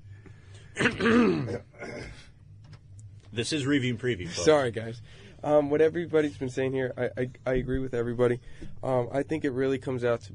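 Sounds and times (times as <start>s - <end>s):
man clearing his throat: 0.7s - 2.3s
speech: 0.8s - 1.7s, 3.4s - 10.3s.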